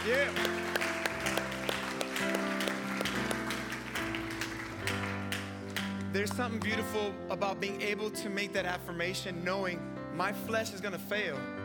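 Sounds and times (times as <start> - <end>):
speech: 0.0 - 0.5, 6.2 - 11.5
audience clapping hands in a steady rhythm: 0.0 - 7.0
sustained keyboard or organ chords: 0.0 - 11.6.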